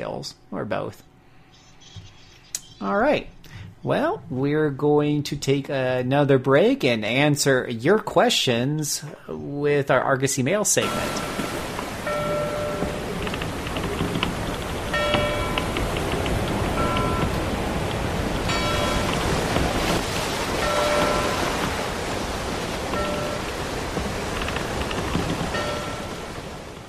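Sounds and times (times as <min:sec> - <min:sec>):
speech: 0:00.0 - 0:01.1, 0:02.8 - 0:11.6
ship's bell clanging: 0:10.8 - 0:24.3, 0:25.4 - 0:26.5
loud wash of ocean waves: 0:10.8 - 0:26.8.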